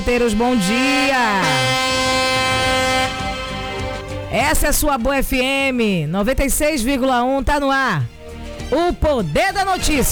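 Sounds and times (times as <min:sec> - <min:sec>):
ride-app and taxi drivers' car horns honking: 0:00.0 - 0:04.8
speech: 0:00.1 - 0:02.1, 0:04.3 - 0:10.1.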